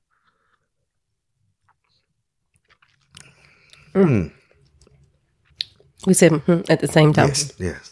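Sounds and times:
person sipping and swallowing beer: 0:01.6 - 0:06.2
speech: 0:04.0 - 0:04.4, 0:06.1 - 0:07.9.

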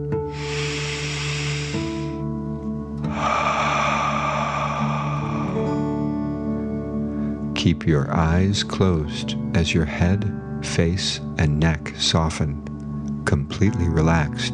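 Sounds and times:
soft steady musical drone: 0:00.2 - 0:07.6
slow deep breath in and long airy exhale: 0:00.3 - 0:07.5
speech: 0:07.7 - 0:12.7, 0:13.3 - 0:14.5.

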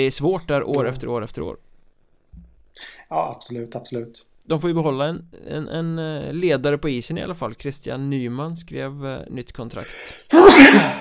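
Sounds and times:
speech: 0:00.0 - 0:01.7, 0:02.8 - 0:10.9
sneeze: 0:10.3 - 0:10.9.

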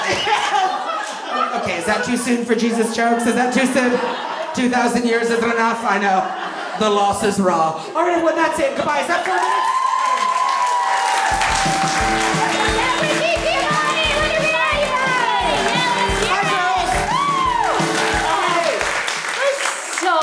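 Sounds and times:
laughter: 0:00.0 - 0:07.9, 0:11.2 - 0:20.0
speech: 0:01.5 - 0:09.6
steady clapping: 0:09.2 - 0:20.2
audience cheering and screaming: 0:09.4 - 0:20.2
rhythmic stomping beat: 0:11.0 - 0:20.1.

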